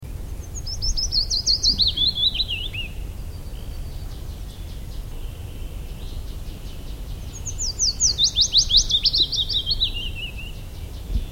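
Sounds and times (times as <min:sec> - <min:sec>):
willow warbler: 0:00.0 - 0:11.3.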